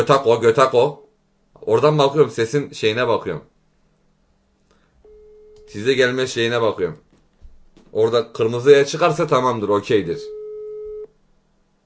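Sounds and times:
speech: 0.0s - 1.0s, 1.6s - 3.5s, 5.7s - 7.0s, 7.9s - 10.4s
faint hiss: 0.0s - 11.8s
telephone call tone from an unanswered call: 5.1s - 5.8s, 10.2s - 11.1s.

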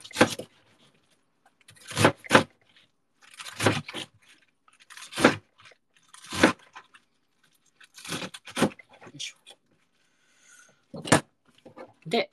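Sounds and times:
knife chopping napa cabbage into bite-size pieces: 0.0s - 0.6s, 1.7s - 2.6s, 3.2s - 6.9s, 7.9s - 8.8s
speech: 12.1s - 12.3s.

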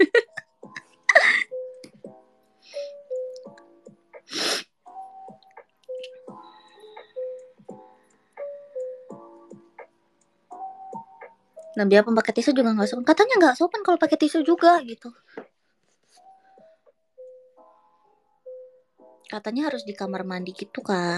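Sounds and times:
speech: 0.0s - 0.2s, 11.8s - 15.4s, 19.4s - 21.1s
snot being sniffed up through the nose: 4.2s - 4.8s.

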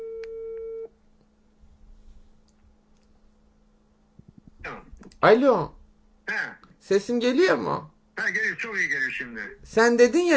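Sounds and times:
electronic phone dialing tone: 0.0s - 0.9s
speech: 5.2s - 10.3s.

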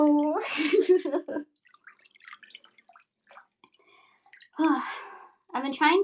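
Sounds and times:
speech: 0.0s - 1.5s, 4.6s - 5.0s, 5.6s - 6.0s
water dripping in a bath: 0.0s - 6.0s
small splashes in a bath: 1.4s - 5.3s.

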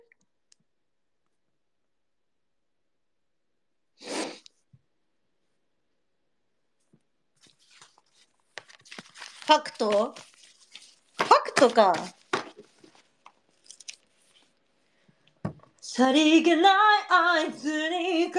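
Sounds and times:
person sneezing: 4.0s - 4.5s
person snorting: 4.0s - 4.5s
rustling: 7.4s - 14.6s
speech: 9.5s - 10.3s, 11.6s - 12.2s, 16.0s - 18.3s.

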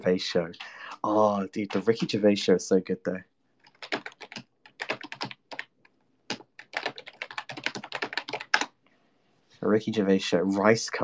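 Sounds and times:
speech: 0.0s - 3.3s, 9.6s - 11.0s
typing on computer keyboard: 1.6s - 2.2s, 3.6s - 8.7s.

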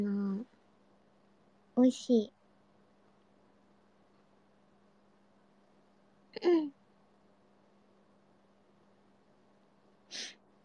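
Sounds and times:
speech: 1.8s - 2.4s
breathy exhale or sniff: 10.1s - 10.4s
person sneezing: 10.1s - 10.4s.

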